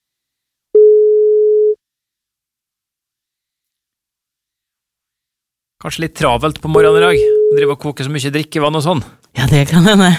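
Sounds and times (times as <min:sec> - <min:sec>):
phone ringback tone, steady pure electronic tone: 0:00.8 - 0:01.8, 0:06.8 - 0:07.7
speech: 0:05.8 - 0:10.1.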